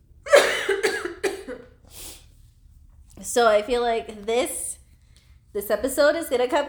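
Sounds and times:
harsh rasping coughs: 0:00.3 - 0:01.7
speech: 0:03.2 - 0:04.7, 0:05.5 - 0:06.6.

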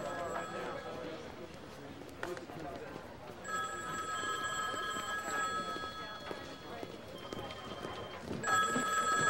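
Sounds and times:
telephone ringing with electronic trill: 0:00.0 - 0:01.2, 0:03.4 - 0:09.2.

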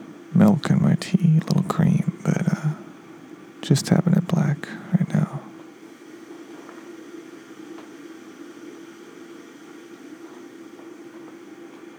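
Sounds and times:
electric kettle heating water: 0:00.0 - 0:00.8, 0:05.5 - 0:11.9
faint ticks and crackles of an electric kettle: 0:00.0 - 0:11.9
speech: 0:00.4 - 0:01.9, 0:03.7 - 0:04.9.

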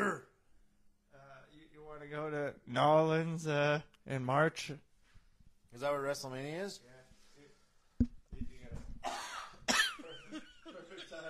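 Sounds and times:
speech: 0:02.0 - 0:04.9, 0:05.7 - 0:07.0
person coughing: 0:09.0 - 0:10.1
laughter: 0:09.8 - 0:11.2.

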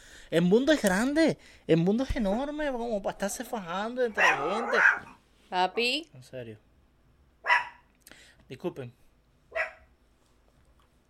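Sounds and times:
speech: 0:00.3 - 0:06.7, 0:08.5 - 0:09.0
dog barking: 0:04.1 - 0:05.2, 0:07.4 - 0:07.9, 0:09.5 - 0:09.9.

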